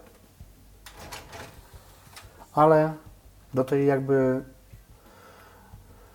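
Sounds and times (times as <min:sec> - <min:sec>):
five-disc CD changer drawer sliding: 0:00.9 - 0:02.3
speech: 0:02.6 - 0:04.6.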